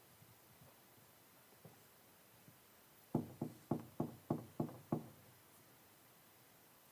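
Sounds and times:
firm knocking on a door: 0:03.1 - 0:05.2.

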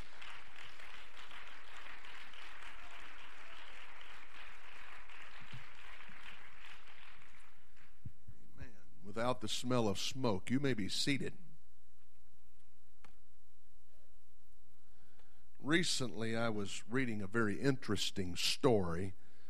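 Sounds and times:
large group clapping: 0:00.0 - 0:08.0
speech: 0:09.2 - 0:11.4, 0:15.7 - 0:19.2.

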